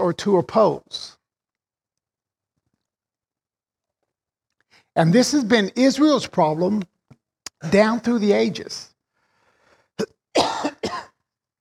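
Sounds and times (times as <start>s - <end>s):
speech: 0.1s - 1.2s, 5.0s - 6.9s, 7.6s - 8.9s, 10.0s - 10.6s
person coughing with a throaty rasp: 10.0s - 11.2s.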